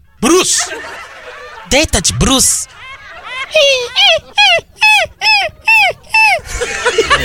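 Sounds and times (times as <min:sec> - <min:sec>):
speech: 0:00.2 - 0:01.1, 0:01.7 - 0:02.7, 0:03.5 - 0:07.2
laughter: 0:00.2 - 0:07.2
person imitating puppy whimpering: 0:03.6 - 0:06.4.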